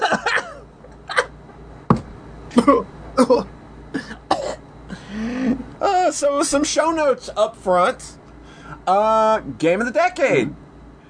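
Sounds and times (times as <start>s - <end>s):
harsh coughing: 0.0s - 1.4s, 2.5s - 5.7s
low hum: 0.0s - 11.0s
speech: 2.6s - 3.5s, 6.1s - 8.2s, 8.8s - 10.6s.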